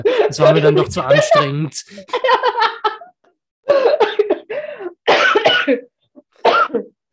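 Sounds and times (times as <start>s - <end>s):
speech: 0.0s - 2.7s
loud coughing fit: 3.7s - 7.0s.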